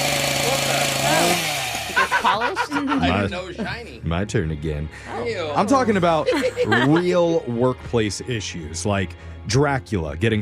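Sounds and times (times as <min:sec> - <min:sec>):
chainsaw revving: 0:00.0 - 0:03.3
laughter: 0:01.7 - 0:04.0, 0:05.7 - 0:07.6
speech: 0:02.3 - 0:10.4.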